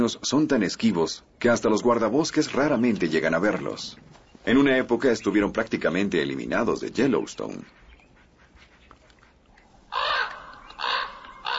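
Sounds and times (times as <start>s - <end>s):
speech: 0.0s - 7.8s
crow cawing in protest near a puma at an elk carcass in Yellowstone: 9.9s - 11.5s.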